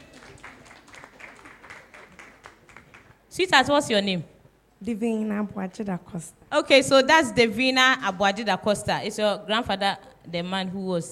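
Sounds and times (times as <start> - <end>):
audience applause: 0.0 - 3.2
speech: 3.4 - 11.0.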